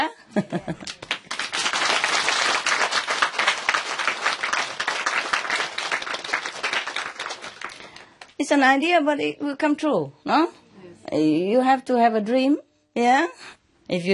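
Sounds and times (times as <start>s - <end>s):
speech: 0.1s - 1.0s, 8.5s - 14.1s
audience applause: 0.8s - 8.3s.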